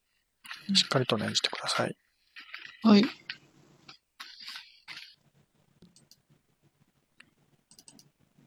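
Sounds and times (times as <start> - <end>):
tarot cards being shuffled by hand: 0.5 - 5.2
speech: 0.7 - 2.1, 2.8 - 3.2.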